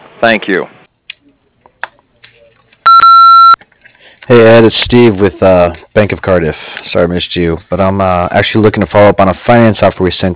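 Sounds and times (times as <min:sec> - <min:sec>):
speech: 0:00.2 - 0:00.8, 0:04.3 - 0:10.3
answering machine beep: 0:02.9 - 0:03.6.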